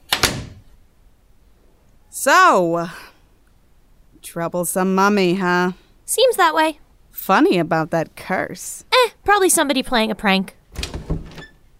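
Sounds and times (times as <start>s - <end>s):
lock catching: 0.0s - 0.6s
door being shut and padlocked: 0.0s - 0.7s, 10.7s - 11.7s
speech: 2.2s - 3.0s, 4.2s - 10.6s.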